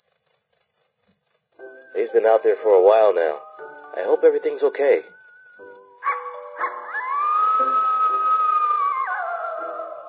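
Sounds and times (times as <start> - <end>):
speech: 1.6 - 5.7
coyote howling: 6.0 - 10.0.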